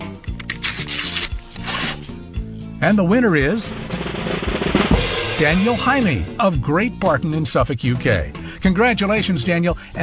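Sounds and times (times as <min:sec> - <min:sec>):
paper rustling and tearing as an envelope is opened: 0:00.5 - 0:02.1
speech: 0:02.8 - 0:04.4, 0:05.4 - 0:10.0.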